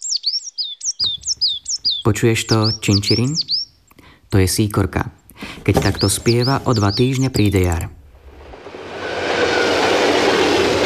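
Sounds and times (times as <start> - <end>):
speech: 2.0 - 3.6, 4.3 - 8.0
express train thundering across a viaduct overhead: 8.8 - 10.8.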